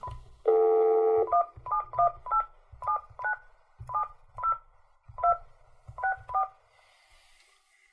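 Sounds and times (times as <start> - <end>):
telephone keypad DTMF dialing tones: 0.0 - 4.6.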